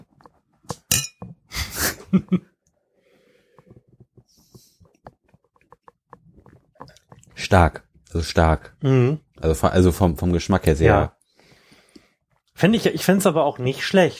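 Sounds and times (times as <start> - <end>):
small handling noises: 0.0 - 1.5, 2.2 - 13.8
beer glasses clinking together in a toast: 0.9 - 1.2
speech: 2.1 - 2.5, 7.5 - 11.2, 12.6 - 14.1
soft breathing: 2.8 - 5.0, 11.2 - 12.4.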